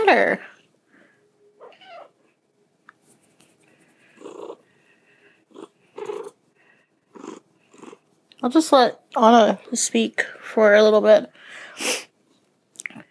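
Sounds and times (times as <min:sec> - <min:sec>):
speech: 0:00.1 - 0:00.5, 0:08.4 - 0:12.0
wet cat meowing and yowling: 0:01.6 - 0:02.2.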